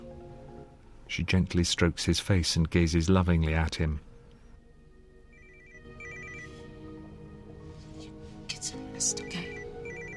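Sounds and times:
speech: 1.1s - 4.1s
mobile phone ringing with a warbling electronic melody: 5.3s - 6.9s, 9.1s - 10.1s.

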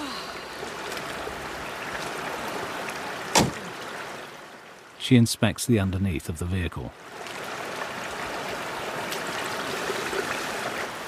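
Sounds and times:
rushing mountain river water at a ford: 0.0s - 11.0s
Land Rover door opening clunk: 3.3s - 3.6s
speech: 5.1s - 7.2s.

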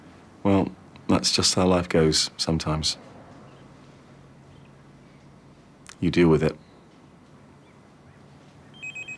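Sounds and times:
low hum: 0.0s - 9.1s
speech: 0.4s - 3.1s, 6.0s - 6.6s
mobile phone ringing with bright electronic beeps: 8.7s - 9.1s.

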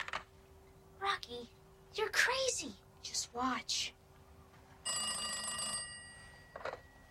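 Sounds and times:
speech: 1.3s - 4.0s
corded telephone in a cell ringing: 4.8s - 7.1s.

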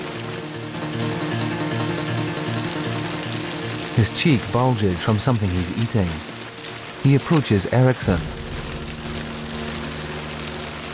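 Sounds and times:
steady rain pouring: 0.0s - 10.9s
speech: 4.0s - 6.4s, 7.0s - 8.4s
low droning hum: 8.0s - 10.9s.

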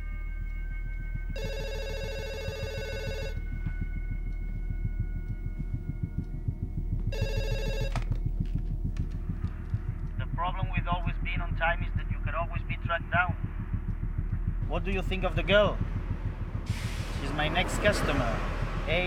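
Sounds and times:
steady low rhythmic throb: 0.0s - 19.0s
telephone ringing: 1.4s - 3.4s, 7.2s - 8.2s
speech: 14.8s - 15.9s, 17.3s - 19.0s.

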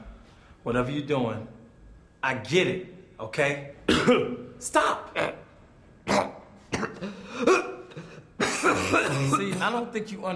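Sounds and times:
speech: 0.6s - 1.6s, 2.2s - 5.4s, 8.9s - 10.3s
person coughing harshly: 3.9s - 4.4s, 6.1s - 9.8s.

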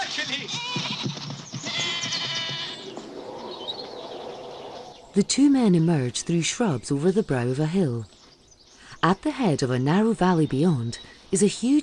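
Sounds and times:
goats bleating as they flee in a dramatized scene: 0.0s - 2.9s
speech: 0.3s - 0.8s, 5.2s - 8.2s, 9.0s - 11.8s.

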